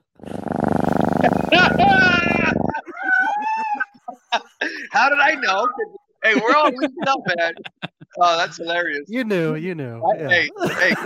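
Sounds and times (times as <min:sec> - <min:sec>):
cat growl sound effect from a soundboard: 0:00.3 - 0:02.8
laughter: 0:01.4 - 0:08.6, 0:09.2 - 0:11.0
speech: 0:05.0 - 0:11.0.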